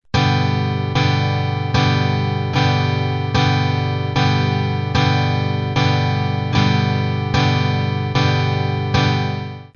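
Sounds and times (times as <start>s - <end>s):
G major chord: 0.2s - 9.7s.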